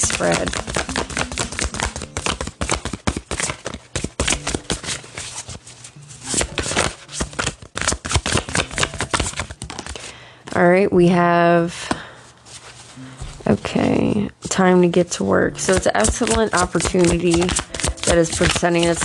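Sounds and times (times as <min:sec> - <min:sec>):
angel deck cards shuffled and drawn: 0:00.0 - 0:10.1, 0:15.6 - 0:19.0
speech: 0:00.2 - 0:00.8, 0:10.6 - 0:11.8, 0:14.1 - 0:19.0.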